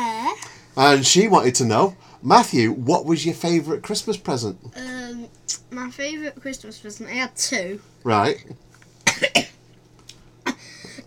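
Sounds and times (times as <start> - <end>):
speech: 0.8 - 8.6, 9.2 - 9.5
person coughing: 9.1 - 9.6, 10.5 - 11.0.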